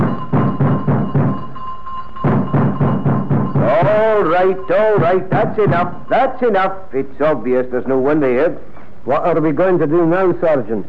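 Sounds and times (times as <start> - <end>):
heavy fists pounding a door: 0.0 - 1.4, 2.3 - 3.7
faint steady electric doorbell ringing: 0.0 - 5.0
speech: 3.9 - 10.8.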